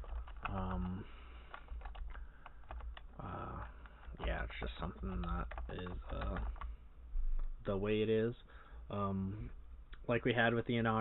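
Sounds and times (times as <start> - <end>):
rapid keyboard typing: 0.0 - 6.7
speech: 4.6 - 6.6, 7.6 - 11.0.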